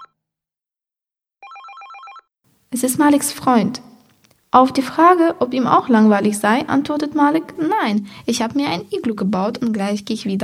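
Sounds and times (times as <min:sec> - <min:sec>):
telephone ringing with trilling electronic bell: 0:01.4 - 0:02.3
speech: 0:02.7 - 0:03.9, 0:04.5 - 0:10.4.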